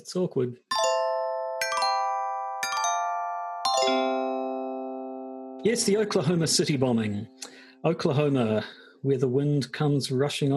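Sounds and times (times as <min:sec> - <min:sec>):
speech: 0:00.0 - 0:00.7, 0:03.9 - 0:04.2, 0:05.6 - 0:10.5
bright metallic chime strikes: 0:00.7 - 0:07.4.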